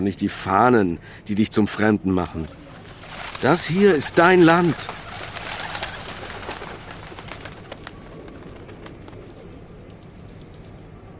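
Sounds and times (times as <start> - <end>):
speech: 0.0 - 2.6, 3.4 - 5.0
pigeons cooing: 2.4 - 9.6.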